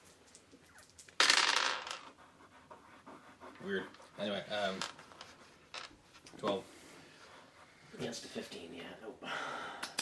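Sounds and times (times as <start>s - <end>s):
dice tumbling and clattering across a hard tabletop: 1.0s - 2.1s, 4.8s - 5.9s
speech: 3.6s - 5.0s, 6.4s - 6.7s, 8.0s - 9.8s.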